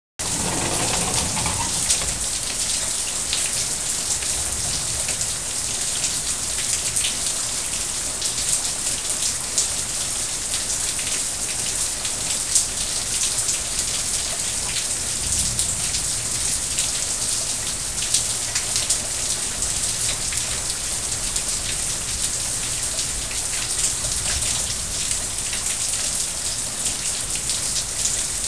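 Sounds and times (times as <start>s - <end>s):
rainfall: 0.2s - 28.4s.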